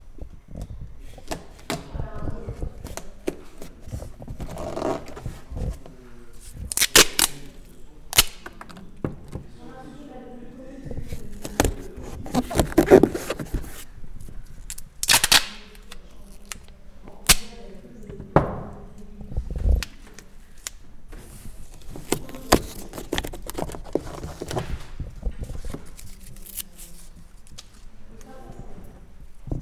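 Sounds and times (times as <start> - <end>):
Scotch tape ASMR sounds: 1.1 - 9.4, 10.9 - 17.7, 19.8 - 27.8.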